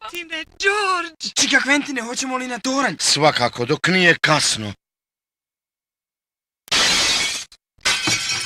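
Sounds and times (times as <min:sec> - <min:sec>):
speech: 0:00.4 - 0:04.8
glass panes being smashed: 0:06.7 - 0:08.4.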